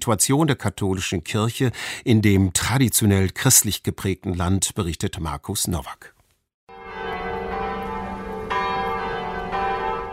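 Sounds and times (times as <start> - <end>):
speech: 0.0 - 6.2
large cathedral church bells ringing in a peal: 6.7 - 10.1.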